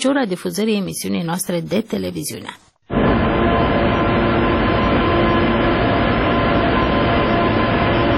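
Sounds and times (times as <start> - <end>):
speech: 0.0 - 2.7
passenger train rumbling along the rails: 2.9 - 8.1.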